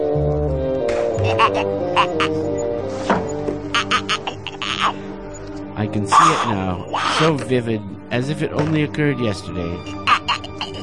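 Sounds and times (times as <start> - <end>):
low droning background: 0.0 - 10.8
geese quacking: 1.2 - 2.4, 3.7 - 5.0, 6.1 - 7.4, 10.0 - 10.8
speech: 1.2 - 3.2, 5.8 - 10.1.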